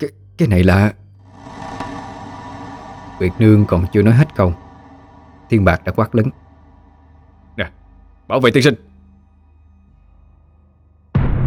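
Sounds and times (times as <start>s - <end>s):
speech: 0.0s - 1.0s, 3.2s - 4.6s, 5.5s - 6.4s, 7.6s - 8.9s
floating orb of blood exploding with rumbling roar: 1.2s - 8.0s, 11.1s - 11.4s.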